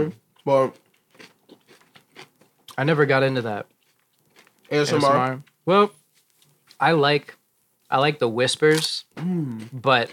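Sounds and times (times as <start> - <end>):
speech: 0.0 - 1.3, 2.8 - 3.7, 4.7 - 6.0, 6.8 - 10.1
person chewing crunchy raw vegetables: 0.3 - 2.9, 3.6 - 6.8, 9.3 - 10.1.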